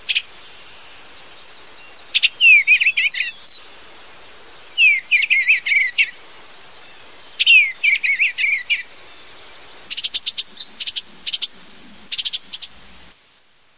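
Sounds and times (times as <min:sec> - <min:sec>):
Eastern Bluebird call: 0:01.8 - 0:03.7, 0:04.8 - 0:13.1.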